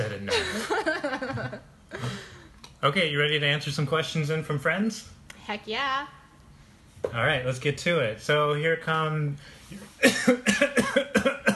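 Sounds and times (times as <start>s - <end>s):
laughter: 0.3s - 2.3s
speech: 2.8s - 6.2s, 7.0s - 11.5s
harsh coughing: 10.0s - 11.5s.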